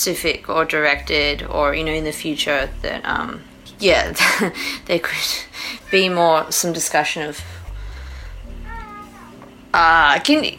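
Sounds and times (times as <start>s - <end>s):
speech: 0.0s - 7.6s, 9.7s - 10.5s
cat meowing in a house: 5.8s - 6.2s, 8.4s - 10.0s.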